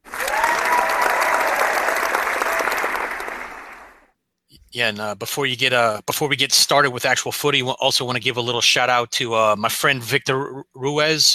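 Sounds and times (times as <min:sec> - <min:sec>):
crowd cheering and applauding: 0:00.0 - 0:04.0
rising whistles or shouts from a crowd: 0:00.1 - 0:04.0
speech: 0:04.8 - 0:11.3.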